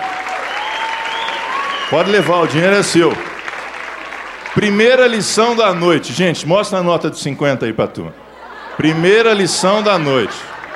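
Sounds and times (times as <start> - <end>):
crowd applauding: 0.0 - 6.1, 8.8 - 10.7
speech: 1.9 - 3.3, 4.6 - 8.2, 8.8 - 10.5
laughter: 8.2 - 10.7.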